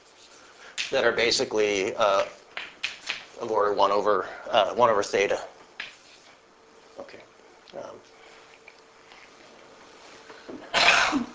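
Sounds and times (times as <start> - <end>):
speech: 0.9 - 2.4, 3.4 - 5.5
single sharp breathy sneeze: 10.6 - 11.3.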